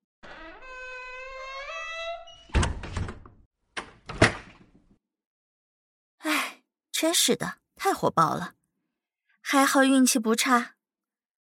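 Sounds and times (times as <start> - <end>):
door creaking squeal: 0.2 - 4.8
dull heavy door thuds: 0.6 - 4.7
speech: 7.0 - 8.6, 9.5 - 10.8.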